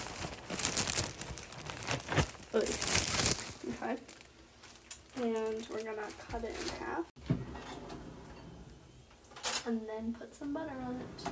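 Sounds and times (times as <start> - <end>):
English muffin plastic packaging crinkling: 0.0 - 7.1
speech: 3.9 - 4.2, 5.2 - 7.1, 9.7 - 11.2.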